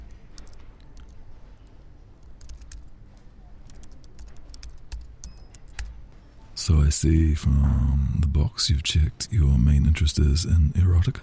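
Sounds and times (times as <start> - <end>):
typing on a computer keyboard while entering a form: 0.0 - 6.2
speech: 6.6 - 11.2.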